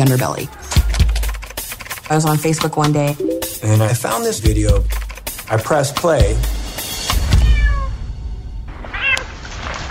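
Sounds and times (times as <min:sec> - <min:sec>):
speech: 0:00.0 - 0:00.7, 0:02.1 - 0:06.6
cat meowing in rising drawn-out cries: 0:07.3 - 0:08.0, 0:08.8 - 0:09.3.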